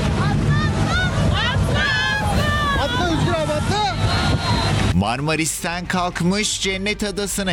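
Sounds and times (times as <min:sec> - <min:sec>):
crowd of tourists shouting from a sinking tour boat near Marmaris: 0:00.0 - 0:05.0
tour boat engine rumbling: 0:00.0 - 0:06.4
speech: 0:05.2 - 0:07.5.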